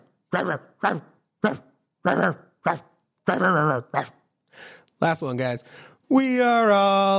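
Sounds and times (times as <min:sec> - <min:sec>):
person imitating a dog barking in a song about animal sounds: 0:00.0 - 0:04.2
speech: 0:00.3 - 0:07.1.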